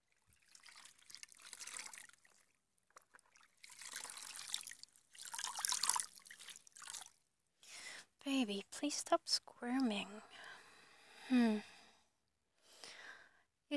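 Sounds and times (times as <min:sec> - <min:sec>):
water trickling and splashing while washing a feverish child: 0:00.0 - 0:07.3
speech: 0:08.2 - 0:10.5, 0:11.3 - 0:11.7.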